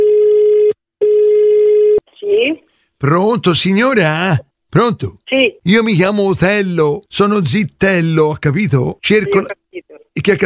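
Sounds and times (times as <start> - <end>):
telephone ring tone on the line for a prank call: 0.0 - 2.0
speech: 3.0 - 9.6, 10.2 - 10.4.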